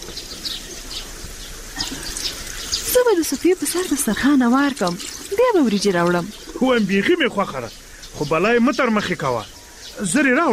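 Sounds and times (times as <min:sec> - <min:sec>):
warm water poured over hands being washed with soap: 0:00.0 - 0:08.3
speech: 0:03.1 - 0:10.5.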